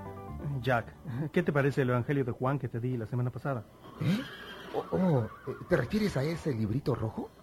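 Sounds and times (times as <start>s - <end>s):
speech: 0.7s - 7.4s
horse neighing: 3.7s - 6.6s.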